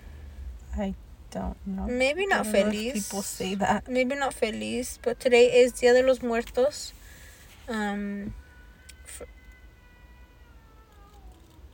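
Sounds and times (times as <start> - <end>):
speech: 0.8 - 7.0, 7.7 - 8.4, 9.2 - 9.4
cat yowling meow and moaning growl: 8.4 - 11.7.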